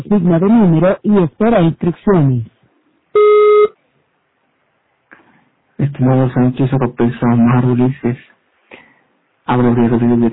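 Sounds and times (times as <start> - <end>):
speech: 0.0 - 2.5, 5.8 - 8.4, 9.5 - 10.3
voicemail beep: 3.2 - 3.7.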